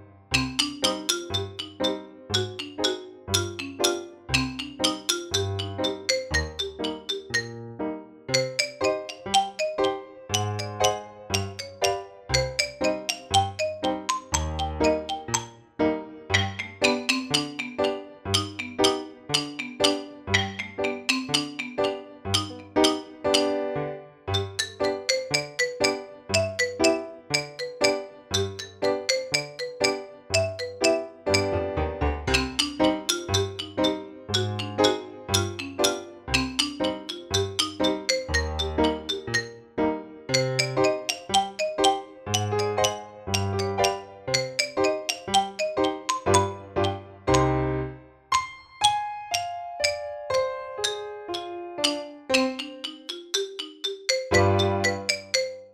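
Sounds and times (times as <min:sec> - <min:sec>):
xylophone accompaniment: 0:00.3 - 0:55.7.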